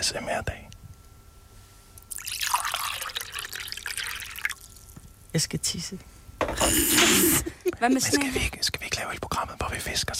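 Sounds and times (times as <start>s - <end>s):
speech: 0.0s - 0.6s, 5.3s - 10.1s
water trickling with drips and gurgles for ASMR: 2.0s - 5.0s.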